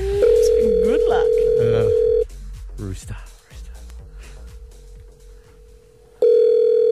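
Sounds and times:
voices: 0.0s - 2.0s
telephone dialing and ringing tone: 0.2s - 2.2s, 6.2s - 6.8s.

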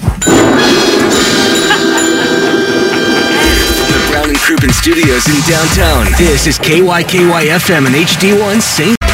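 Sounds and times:
loud bell ringing: 0.2s - 4.3s
speech: 4.9s - 9.0s.

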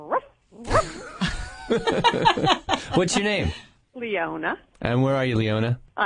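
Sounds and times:
woman in Bridgewater New Jersey imitating a dog barking: 0.0s - 1.0s
laughter: 0.7s - 3.7s
speech: 1.7s - 6.0s.

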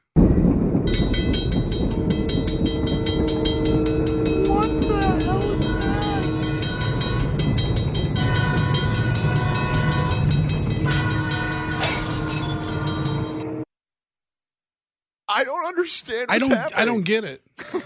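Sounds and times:
passing train rumbling: 0.2s - 13.6s
railroad crossing bell clanging: 0.2s - 13.6s
speech: 15.9s - 17.8s.

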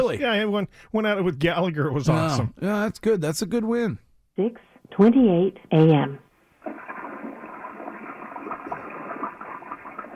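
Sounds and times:
speech: 0.1s - 6.8s
toilet flushing: 6.6s - 10.1s.

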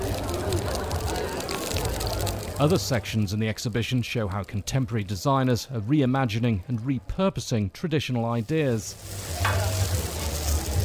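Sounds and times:
sausage sizzling in a frying pan: 0.0s - 2.8s, 8.4s - 10.8s
speech: 2.6s - 10.0s
scrape in frying pan: 8.8s - 10.8s.

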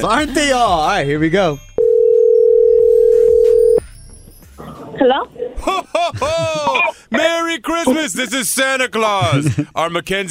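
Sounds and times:
speech: 0.0s - 1.7s, 5.0s - 10.2s
quiet phone line noise: 1.8s - 3.8s
telephone ring tone heard through the line: 1.8s - 3.8s
laughter: 5.6s - 10.0s.

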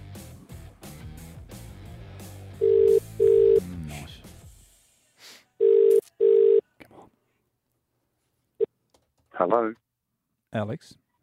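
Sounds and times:
telephone ringing: 2.6s - 3.6s, 5.6s - 6.6s
speech: 9.4s - 9.8s, 10.5s - 11.0s.

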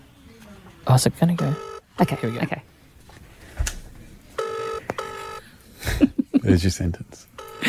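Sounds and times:
speech: 0.9s - 2.7s, 6.5s - 7.3s
phone call ringback tones on speakerphone while connecting: 1.4s - 2.6s, 4.4s - 5.4s, 7.4s - 7.6s.

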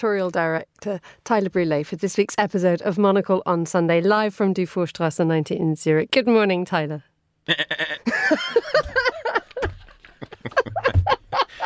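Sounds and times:
speech: 0.0s - 9.1s
pygmy goats bleating: 7.5s - 8.1s
laughter: 8.1s - 11.6s.

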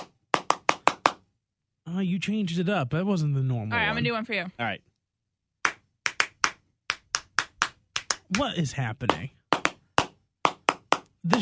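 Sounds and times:
people clapping hands: 0.0s - 1.3s, 5.6s - 11.4s
speech: 1.9s - 4.9s, 8.4s - 9.4s, 11.2s - 11.4s.

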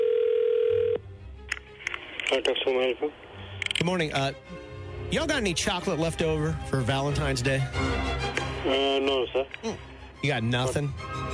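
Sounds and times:
outgoing telephone call ringing tone: 0.0s - 1.0s
speech: 2.3s - 11.3s.

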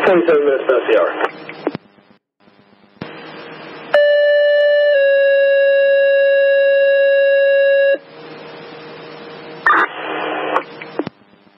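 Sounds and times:
speech: 0.0s - 1.2s
crackling radio static: 0.0s - 3.9s, 9.6s - 11.5s
fire alarm box striking tones: 3.9s - 8.0s
short burst of radio channel noise: 9.6s - 11.1s.

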